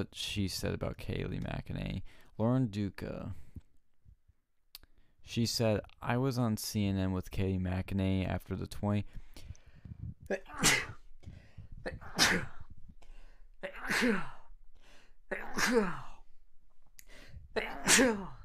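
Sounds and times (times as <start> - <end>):
speech: 0.0 - 3.4, 5.3 - 9.2, 10.3 - 10.9, 11.8 - 12.6, 13.6 - 14.4, 15.3 - 16.1, 17.6 - 18.4
person sneezing loudly: 10.3 - 11.1, 11.8 - 12.7, 13.6 - 14.5, 15.3 - 16.2, 17.6 - 18.4.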